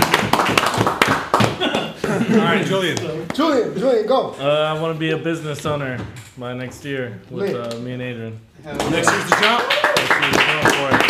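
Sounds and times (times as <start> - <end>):
applause: 0.0 - 1.6, 8.8 - 11.0
speech: 2.4 - 11.0.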